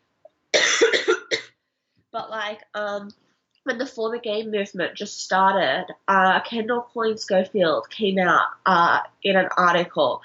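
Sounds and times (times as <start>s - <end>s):
harsh raspy cough: 0.6s - 1.5s
speech: 2.2s - 10.2s.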